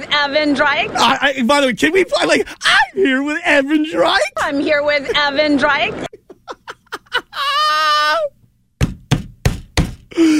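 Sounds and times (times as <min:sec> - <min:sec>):
speech: 0:00.2 - 0:06.1
laughter: 0:06.0 - 0:08.0
hand banging on a table: 0:08.8 - 0:10.1.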